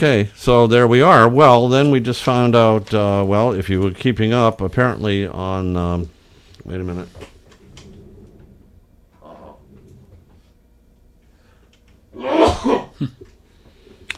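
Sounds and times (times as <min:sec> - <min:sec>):
speech: 0:00.0 - 0:07.3
sneeze: 0:12.2 - 0:13.1.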